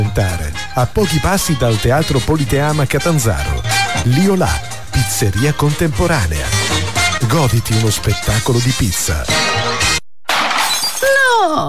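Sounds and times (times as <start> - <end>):
speech: 0.1 - 6.6, 7.2 - 10.0, 11.4 - 11.6
smartphone screen shattering: 10.3 - 11.1.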